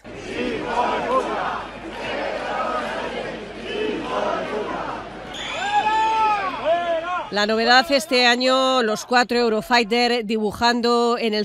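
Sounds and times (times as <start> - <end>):
large outdoor crowd booing and shouting insults: 0.0 - 9.2
sharp whistles from crowd: 5.3 - 6.2
speech: 7.3 - 11.4.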